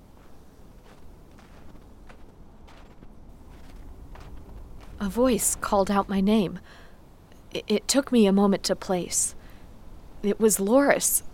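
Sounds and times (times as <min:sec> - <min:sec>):
footsteps crunching at a vacant campsite: 0:00.0 - 0:07.0
low rumbling background at a vacant campsite: 0:00.0 - 0:11.3
speech: 0:05.0 - 0:06.8, 0:07.6 - 0:09.4, 0:10.2 - 0:11.3.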